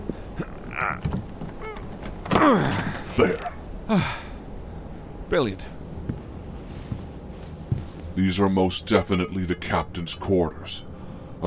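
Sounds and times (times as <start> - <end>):
speech: 0.4 - 1.2, 2.4 - 4.2, 5.3 - 5.8, 8.2 - 11.4
stiff jammed boat cabin door creaking and groaning as forced open: 0.4 - 3.7.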